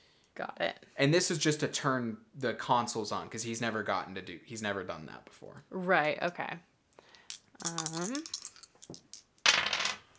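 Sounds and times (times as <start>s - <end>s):
speech: 0.4s - 6.7s, 7.6s - 9.0s
small dice clattering on a hard surface: 7.2s - 10.1s.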